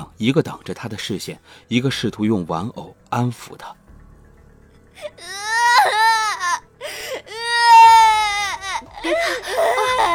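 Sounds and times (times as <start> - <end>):
speech: 0.2 - 3.8
young boy sitting on the ground crying loudly: 5.0 - 10.1.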